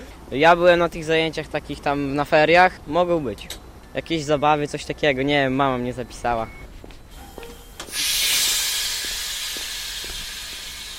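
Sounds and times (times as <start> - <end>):
speech: 0.3 - 6.6
steam locomotive hissing steam: 7.1 - 10.9.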